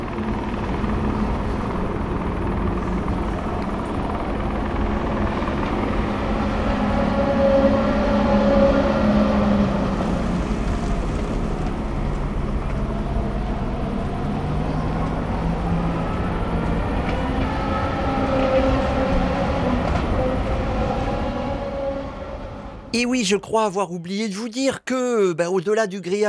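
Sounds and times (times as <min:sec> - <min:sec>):
racing car engines roaring around a circuit: 0:00.0 - 0:22.9
racing cars passing by at speed: 0:05.8 - 0:22.9
speech: 0:23.0 - 0:26.2.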